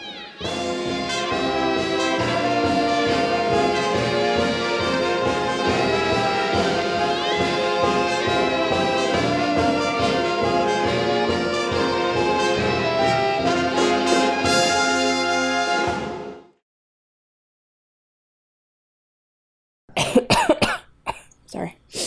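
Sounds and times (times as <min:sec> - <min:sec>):
tonal music: 0:00.0 - 0:16.6
cluster of loud ragged coughs: 0:19.9 - 0:21.4.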